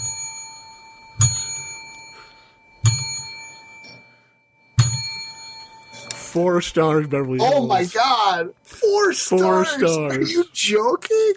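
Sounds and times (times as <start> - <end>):
small ding bell rung to announce a star rating: 0.0 - 6.5
speech: 6.3 - 11.3.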